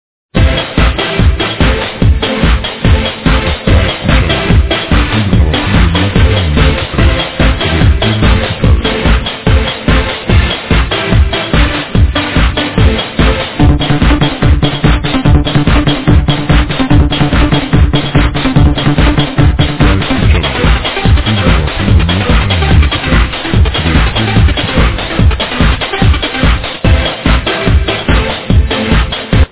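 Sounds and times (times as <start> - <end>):
disco dance music: 0.4 - 29.5.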